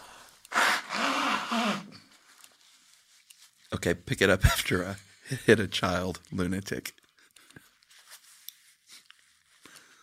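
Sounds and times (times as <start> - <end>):
person blowing their nose: 0.0 - 2.2
speech: 3.7 - 7.0.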